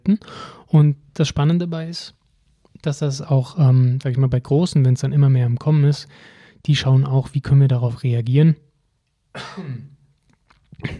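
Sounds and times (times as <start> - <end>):
speech: 0.1 - 2.2, 2.8 - 8.6, 9.3 - 10.0, 10.8 - 10.9
person with a cold coughing: 9.3 - 10.0, 10.8 - 10.9
throat sounds: 9.4 - 10.9.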